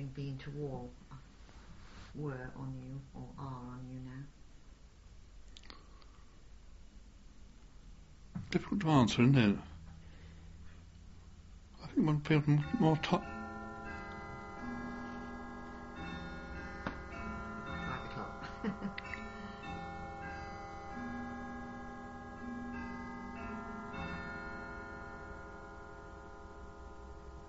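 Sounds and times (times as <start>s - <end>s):
speech: 0.0s - 1.1s, 2.1s - 4.4s, 8.5s - 9.7s, 11.8s - 13.4s
steady hum: 0.0s - 27.4s
clock chiming with resonant bell strokes: 11.8s - 27.4s.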